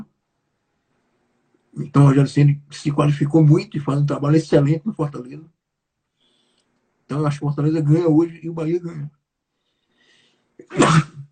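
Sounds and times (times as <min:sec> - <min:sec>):
speech: 0:01.8 - 0:05.6, 0:07.1 - 0:09.2, 0:10.6 - 0:11.2
sharp intake of breath: 0:09.6 - 0:10.5
loud sneeze: 0:10.6 - 0:11.3.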